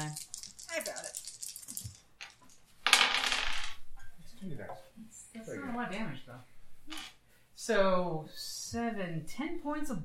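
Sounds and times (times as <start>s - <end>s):
dice rattling on a table: 0.0s - 3.8s
speech: 4.4s - 10.0s.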